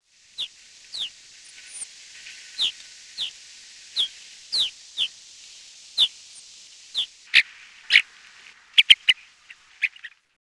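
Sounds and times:
brown-capped rosy finch: 0.4s - 1.9s, 2.5s - 5.2s, 6.0s - 6.2s, 6.9s - 8.1s, 8.8s - 10.3s.

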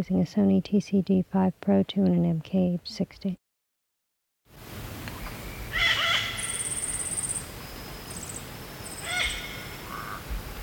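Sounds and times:
speech: 0.0s - 3.4s
Yellow-billed parrot making rough screechy calls: 5.7s - 7.4s, 8.2s - 10.2s.

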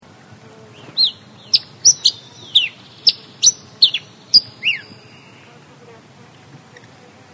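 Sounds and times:
slender-billed finch calling: 0.8s - 5.5s.

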